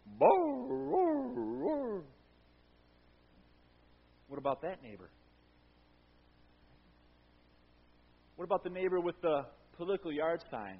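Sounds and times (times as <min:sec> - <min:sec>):
basset hound barking and howling: 0:00.1 - 0:02.2
speech: 0:04.4 - 0:05.2, 0:08.4 - 0:10.7.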